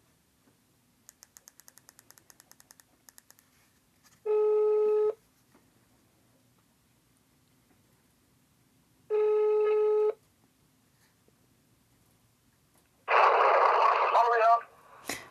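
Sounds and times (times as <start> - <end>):
telephone ringback tone of an outgoing call: 4.3 - 5.2, 9.1 - 10.2
person speaking on the telephone: 14.0 - 14.7.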